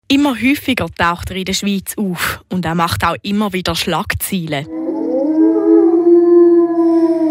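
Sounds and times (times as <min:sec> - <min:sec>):
speech: 0:00.1 - 0:04.8
wolf howling: 0:04.7 - 0:07.2.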